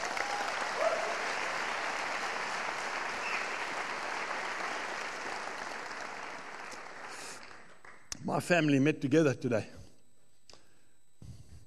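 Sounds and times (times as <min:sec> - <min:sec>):
audience applauding for mothers on Mother's Day: 0:00.0 - 0:08.0
speech: 0:08.3 - 0:09.8.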